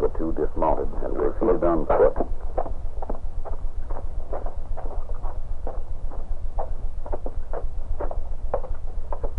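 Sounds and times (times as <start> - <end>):
low constant rumble: 0.0 - 9.3
speech: 1.7 - 2.4
horse hooves clip-clopping at a walking pace: 1.9 - 9.3.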